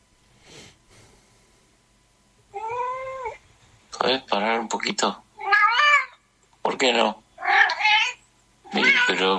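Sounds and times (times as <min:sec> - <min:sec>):
cat meowing in reply: 0:02.5 - 0:03.4, 0:05.4 - 0:06.2, 0:07.4 - 0:09.3
speech: 0:04.0 - 0:05.2, 0:06.8 - 0:07.2, 0:09.1 - 0:09.3.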